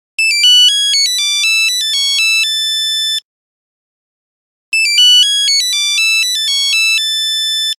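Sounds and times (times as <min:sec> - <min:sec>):
phone buzzer ringtone melody: 0:00.2 - 0:03.2, 0:04.8 - 0:07.7.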